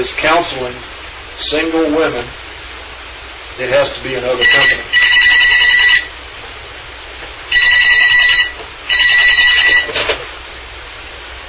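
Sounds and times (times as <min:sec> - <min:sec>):
speech: 0:00.0 - 0:02.4, 0:03.6 - 0:05.0
telephone ringing: 0:04.4 - 0:06.2, 0:07.5 - 0:10.0.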